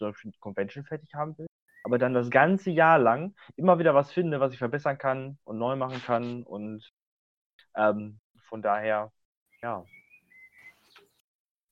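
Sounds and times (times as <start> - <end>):
speech: 0.0 - 7.0, 7.8 - 10.0
bird whistling: 1.7 - 2.0, 9.5 - 11.2.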